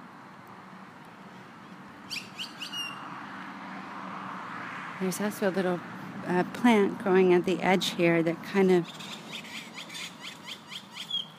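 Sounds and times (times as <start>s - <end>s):
birds calling noisily with shrill high chirps: 1.1s - 3.4s, 8.6s - 11.3s
speech: 5.0s - 9.2s.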